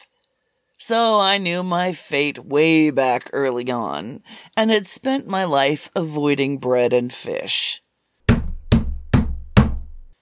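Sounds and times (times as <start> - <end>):
speech: 0.9 - 7.8
fist pounding hard on an apartment door: 8.3 - 10.1.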